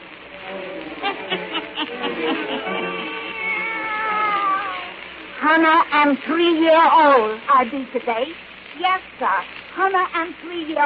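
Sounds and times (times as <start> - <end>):
laughter: 0.8 - 3.6
black cat meowing and yowling: 2.7 - 5.0
speech: 5.6 - 10.8.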